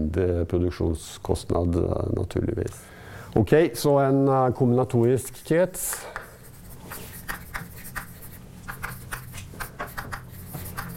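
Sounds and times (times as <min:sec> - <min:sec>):
speech: 0:00.0 - 0:06.2
chalk or marker strokes on a board drawing a diagram: 0:06.3 - 0:10.9.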